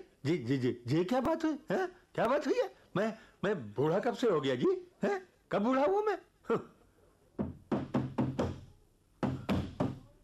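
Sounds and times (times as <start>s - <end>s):
speech: 0.2s - 6.8s
firm knocking on a door: 7.4s - 10.1s.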